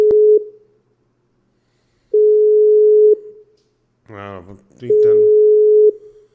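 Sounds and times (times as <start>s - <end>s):
ringback tone of an unanswered outgoing phone call: 2.2s - 3.2s, 5.3s - 6.0s
speech: 4.5s - 5.2s.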